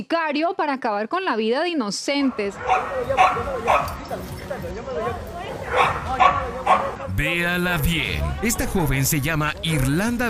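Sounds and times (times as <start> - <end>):
speech: 0.0 - 10.2
husky barking while attacking another dog in Jalisco Mexico: 2.2 - 4.0, 5.6 - 7.1
dogs fighting with whining yelps and growls in Jalisco Mexico: 2.2 - 4.4, 5.5 - 7.1.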